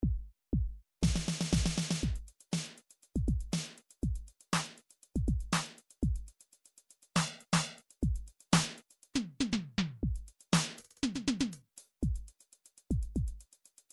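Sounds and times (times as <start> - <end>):
electro MIDI drums: 0.0 - 6.3, 9.4 - 12.3, 12.9 - 13.4.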